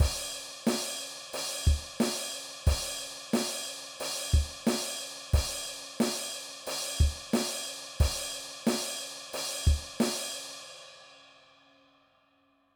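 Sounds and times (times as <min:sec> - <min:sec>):
rock drum beat: 0:00.0 - 0:08.9, 0:09.6 - 0:10.2.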